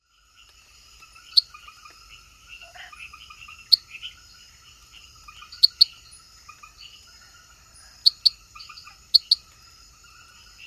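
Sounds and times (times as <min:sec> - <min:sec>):
scattered chirps from other frogs or insects: 0:00.0 - 0:10.6
Hyla reveroi treefrog giving abrupt bright clicks in the Ecuadorian Amazon: 0:00.4 - 0:04.2, 0:05.3 - 0:06.8, 0:08.0 - 0:09.6.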